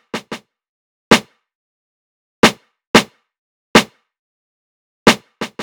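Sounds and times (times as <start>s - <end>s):
boom bap drum loop with snare: 0.2s - 0.4s, 5.1s - 5.6s.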